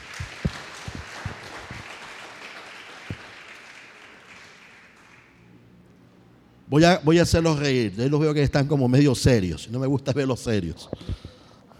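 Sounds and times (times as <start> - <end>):
crowd applauding: 0.0 - 5.4
speech: 6.7 - 11.2.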